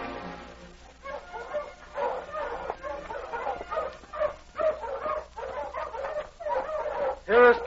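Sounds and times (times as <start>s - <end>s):
sled dog snarling and barking at a cabin: 0.8s - 7.6s.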